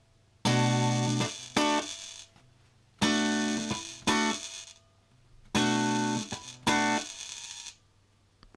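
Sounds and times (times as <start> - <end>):
buzzing from a guitar amp: 0.4 - 4.8, 5.4 - 7.8.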